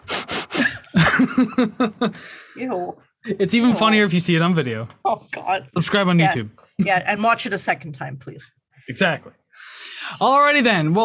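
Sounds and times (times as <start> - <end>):
person imitating wheezy asthmatic sniffing: 0.0 - 0.9
laughter: 0.8 - 2.3
speech: 0.9 - 11.0.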